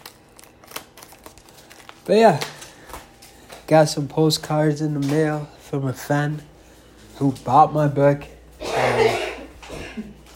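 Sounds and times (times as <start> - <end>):
speech: 2.1 - 2.5, 3.7 - 6.5, 7.2 - 8.4
rough throaty cough: 8.6 - 10.2.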